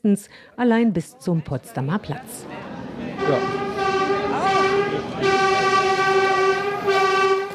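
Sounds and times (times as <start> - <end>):
speech: 0.0 - 2.6, 3.2 - 3.6
commuter train electric motors whining: 2.4 - 7.5.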